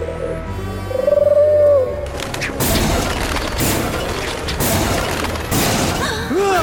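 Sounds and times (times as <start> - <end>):
pigeons cooing and warbling: 0.0 - 2.0
pigeon wings flapping: 2.0 - 5.6.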